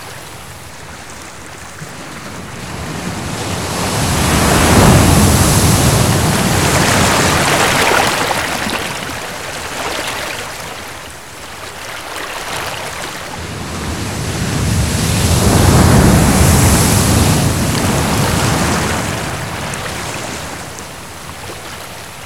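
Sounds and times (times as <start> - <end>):
ocean surf: 0.0 - 22.2.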